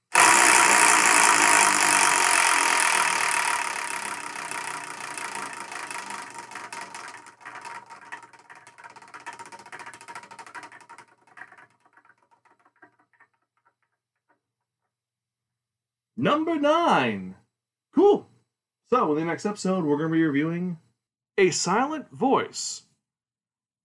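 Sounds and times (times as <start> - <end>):
prize wheel spinning and clicking: 0.0 - 13.9
speech: 16.2 - 17.4, 18.9 - 20.8, 21.4 - 22.9.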